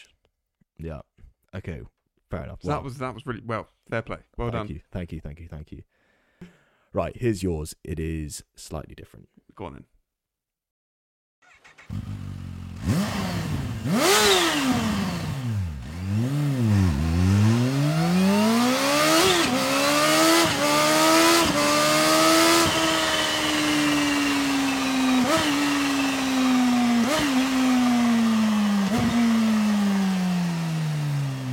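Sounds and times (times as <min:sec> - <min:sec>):
speech: 0:00.8 - 0:06.0, 0:06.9 - 0:09.9
supercharged motorcycle engine with aftermarket exhaust revving loudly: 0:11.4 - 0:31.5.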